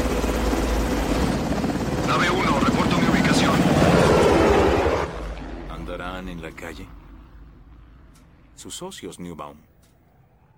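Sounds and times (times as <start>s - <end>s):
helicopter flying overhead: 0.0s - 8.4s
speech: 6.5s - 7.1s, 8.6s - 9.7s.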